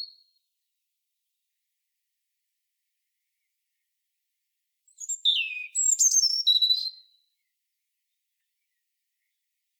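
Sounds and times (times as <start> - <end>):
European robin Erithacus rubecula singing: 4.9 - 7.1.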